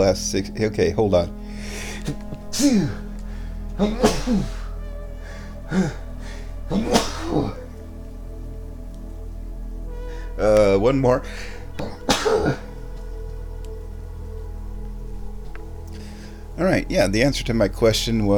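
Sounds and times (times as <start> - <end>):
speech: 0.0 - 3.0, 3.8 - 4.6, 5.7 - 6.0, 6.7 - 7.6, 10.4 - 12.6, 16.6 - 18.3
person sneezing forcefully: 3.8 - 4.7, 6.7 - 7.6, 11.8 - 12.8.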